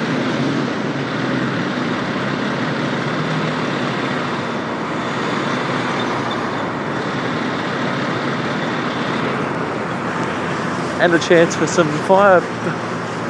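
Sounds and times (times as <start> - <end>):
fire engine idling with heavy engine rumble and hiss: 0.0 - 13.2
speech: 11.0 - 12.8.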